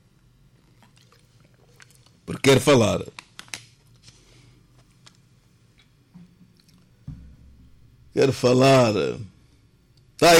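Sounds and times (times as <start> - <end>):
person gulping and swallowing water: 0.6 - 2.3
speech: 2.3 - 3.2, 8.2 - 9.3, 10.2 - 10.3.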